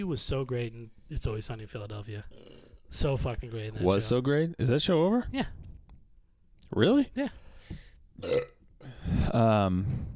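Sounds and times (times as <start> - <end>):
speech: 0.0 - 5.6, 6.7 - 10.1
short guttural belch: 8.2 - 8.7
loud drawn-out burp with a low croaking tone: 8.2 - 9.0.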